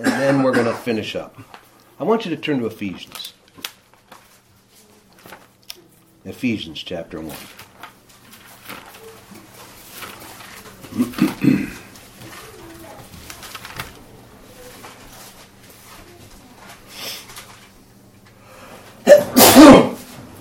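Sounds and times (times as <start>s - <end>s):
speech: 0.0s - 3.4s, 6.2s - 7.6s
person sneezing: 10.9s - 11.9s, 19.0s - 20.1s.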